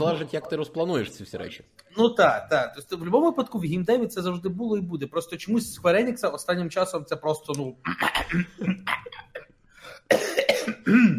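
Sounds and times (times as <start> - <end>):
speech: 0.0 - 9.5, 10.1 - 11.1
loud fit of hacking and throaty coughing: 7.9 - 11.1.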